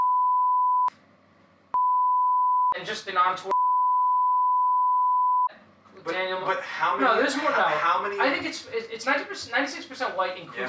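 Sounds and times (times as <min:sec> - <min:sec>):
steady censor bleep at a single pitch: 0:00.0 - 0:00.9, 0:01.8 - 0:02.8, 0:03.5 - 0:05.5
speech: 0:02.8 - 0:03.5, 0:06.0 - 0:10.6.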